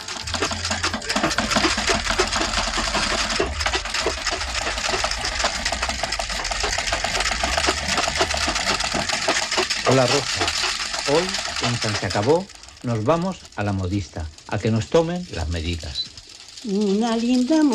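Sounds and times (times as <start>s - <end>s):
sewing machine running: 0.0s - 17.7s
speech: 9.9s - 10.4s, 11.1s - 16.0s, 16.6s - 17.7s.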